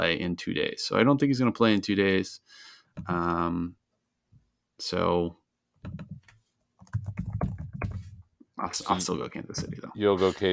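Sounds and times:
speech: 0.0 - 3.8, 4.8 - 6.1, 8.6 - 10.5
computer keyboard typing: 5.8 - 8.1.

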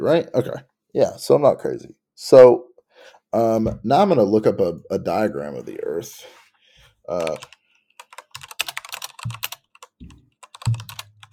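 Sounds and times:
speech: 0.0 - 6.4, 7.1 - 7.6
typing on a computer keyboard: 7.2 - 11.3.

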